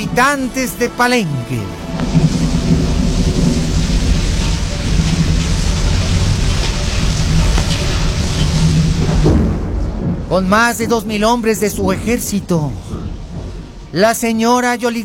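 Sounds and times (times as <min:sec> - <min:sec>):
speech: 0:00.0 - 0:02.3, 0:10.3 - 0:12.9, 0:13.9 - 0:15.0
deep loud thunder rolling and rumbling: 0:00.0 - 0:15.0
heavy rainstorm hissing: 0:00.0 - 0:15.0
sharp crackle: 0:01.8 - 0:11.7.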